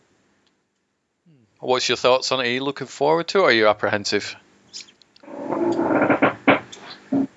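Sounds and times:
speech: 1.4s - 4.9s
chair creaking: 5.2s - 7.3s.

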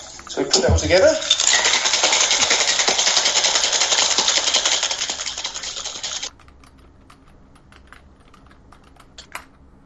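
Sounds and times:
speech: 0.3s - 1.4s
ice rattling in a cocktail shaker with lime juice and cocktail ingredients: 1.2s - 6.3s.

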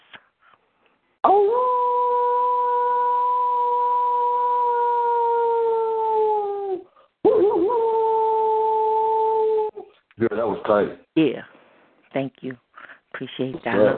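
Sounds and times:
person imitating a wolf howling: 1.2s - 9.8s
speech: 10.6s - 12.6s, 13.2s - 13.9s.

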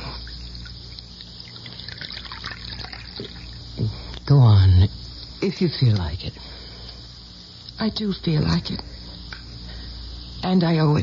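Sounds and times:
coffee pouring into a cup: 0.0s - 3.6s
speech: 4.3s - 6.6s, 7.8s - 8.9s, 10.4s - 11.0s.

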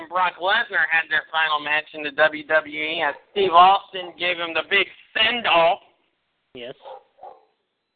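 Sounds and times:
speech: 0.2s - 5.9s, 6.5s - 6.9s
female pet dog barking: 6.8s - 7.6s.

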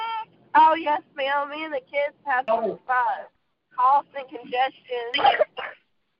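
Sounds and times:
speech: 0.6s - 5.6s
harsh coughing: 5.2s - 5.8s
throat clearing: 5.2s - 5.8s.

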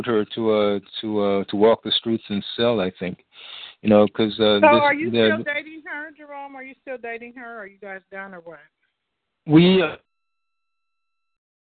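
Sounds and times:
laughter: 0.0s - 5.5s, 9.5s - 10.0s
speech: 0.0s - 8.8s, 9.4s - 10.0s
electronic beep tone as a caller's phone line cuts out: 4.6s - 5.6s.

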